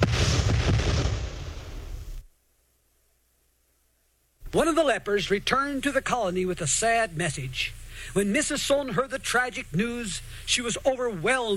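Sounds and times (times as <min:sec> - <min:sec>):
rifle volley fired by a firing squad: 0:00.0 - 0:02.0
speech: 0:04.6 - 0:11.5.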